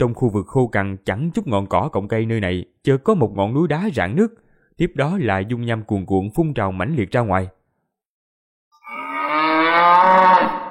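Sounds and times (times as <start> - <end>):
speech: 0.0 - 7.6
buffalo roar sound effect, deep bellowing moo: 8.8 - 10.7.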